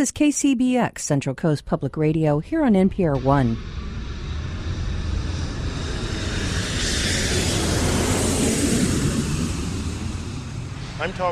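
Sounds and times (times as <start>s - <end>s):
speech: 0.0s - 3.8s, 11.0s - 11.3s
airplane engine roar at an airport: 2.5s - 11.3s.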